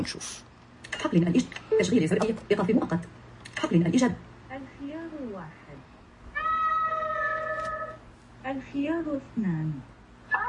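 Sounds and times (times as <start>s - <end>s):
speech: 0.0s - 5.9s, 8.4s - 9.9s
two cats meowing: 6.4s - 8.0s.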